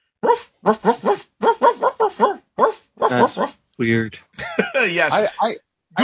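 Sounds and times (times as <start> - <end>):
dog barking and yowling in sing-song rhythm: 0.2 - 3.6
speech: 0.6 - 1.2, 3.8 - 6.0
laughter: 4.3 - 6.0.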